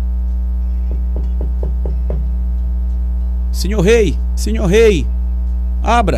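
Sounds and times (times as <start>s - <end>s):
constant low electrical hum: 0.0s - 6.1s
knocking on a wooden bedroom door: 0.8s - 2.4s
speech: 3.6s - 5.2s, 5.8s - 6.1s.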